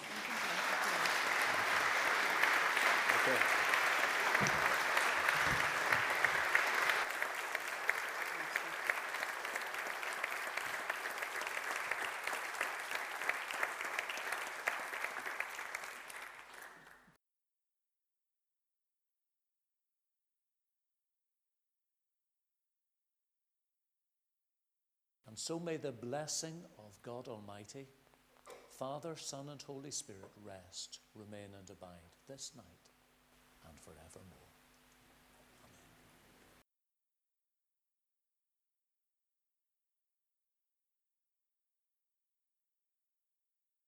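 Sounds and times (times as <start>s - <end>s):
sustained applause from a sizeable audience: 0.0s - 17.1s
speech: 3.3s - 3.6s, 25.4s - 28.0s, 28.8s - 32.9s, 33.7s - 34.5s.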